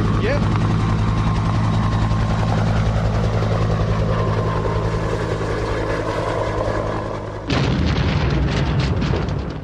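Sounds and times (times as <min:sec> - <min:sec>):
helicopter engine droning: 0:00.0 - 0:07.6
helicopter crashing explosion: 0:07.5 - 0:09.6.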